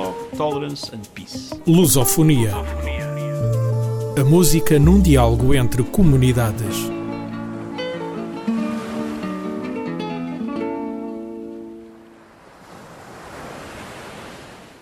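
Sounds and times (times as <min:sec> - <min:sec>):
speech: 0:00.3 - 0:03.5, 0:04.2 - 0:07.0
sustained musical tones: 0:01.6 - 0:08.4
sea waves breaking on a shore: 0:06.9 - 0:14.8.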